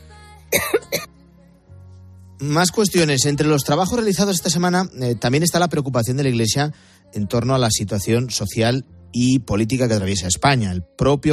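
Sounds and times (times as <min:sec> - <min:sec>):
person coughing: 0:00.5 - 0:01.1
speech: 0:02.4 - 0:11.3.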